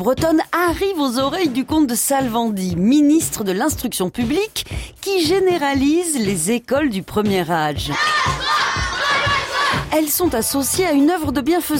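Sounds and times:
speech: 0:00.0 - 0:08.4, 0:09.9 - 0:11.7
dense crowd of children shouting and clamoring: 0:07.9 - 0:09.9.

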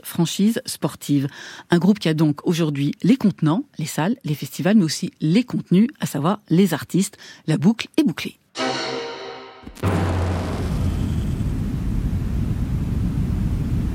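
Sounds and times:
speech: 0:00.0 - 0:08.4
brief tonal droning sound: 0:08.6 - 0:12.0
steady loud white noise with heavy low rumble: 0:09.8 - 0:13.8.

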